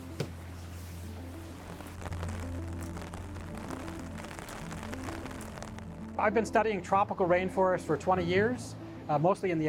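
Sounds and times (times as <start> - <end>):
artificial rain falling inside an enclosed indoor rainforest: 1.0 - 7.3
speech: 6.2 - 9.6.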